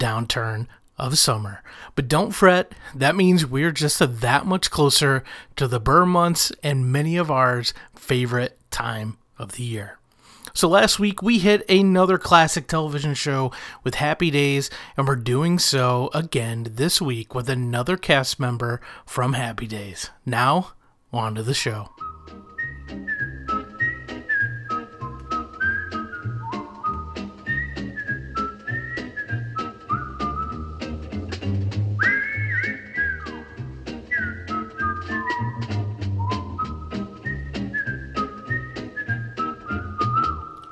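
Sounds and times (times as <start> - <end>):
speech: 0.0 - 10.0, 10.6 - 23.2
bright whistled television theme melody: 21.6 - 40.7.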